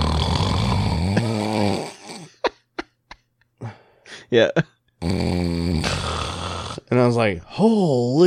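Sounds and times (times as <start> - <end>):
voice imitating a woman's loud raspy snore: 0.0 - 2.4, 5.0 - 6.9
speech: 4.3 - 5.6, 6.9 - 8.2.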